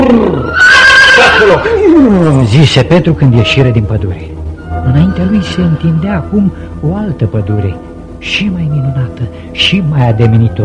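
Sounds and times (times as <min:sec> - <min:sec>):
horse neighing: 0:00.0 - 0:02.2, 0:04.8 - 0:06.1
speech: 0:01.5 - 0:10.6.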